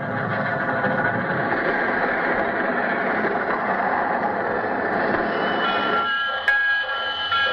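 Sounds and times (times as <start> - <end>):
sound effect of a train pulling into a railroad station: 0.0 - 7.5
brief sharp high squeal: 3.9 - 7.5.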